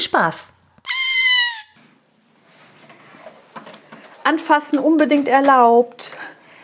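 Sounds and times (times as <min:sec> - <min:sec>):
speech: 0:00.0 - 0:00.6, 0:04.2 - 0:06.4
kitten meowing: 0:00.8 - 0:01.8
soft rustling: 0:02.3 - 0:04.4.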